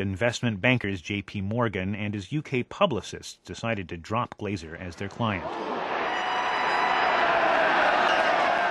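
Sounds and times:
speech: 0.0s - 5.8s
large stadium crowd of football fans roaring and cheering: 5.3s - 8.6s.

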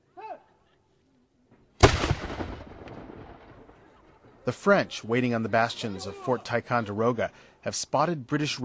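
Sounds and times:
warning shot fired during a French and Indian War battle reenactment: 1.8s - 3.8s
speech: 4.5s - 8.6s.

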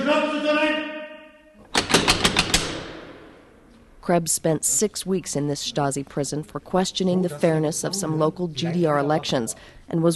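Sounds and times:
metal cell door lock slammed back and forth: 1.6s - 3.0s
speech: 4.0s - 10.1s.

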